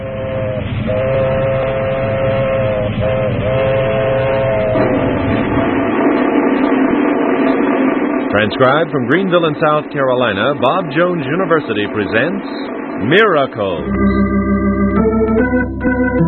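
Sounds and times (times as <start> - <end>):
long wailing train whistle: 0.0 - 5.7
train rumbling along the track: 0.0 - 14.3
speech: 8.4 - 14.6, 15.4 - 16.2.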